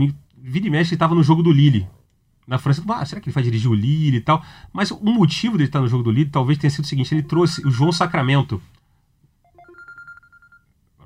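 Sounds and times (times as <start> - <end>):
speech: 0.0 - 8.8
phone ringing with a short melodic electronic ringtone: 7.2 - 8.2, 9.4 - 10.7.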